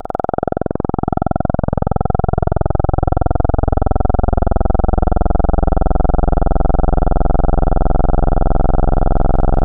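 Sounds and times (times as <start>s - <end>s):
analog PWM resonant synthesizer tone: 0.0s - 9.6s.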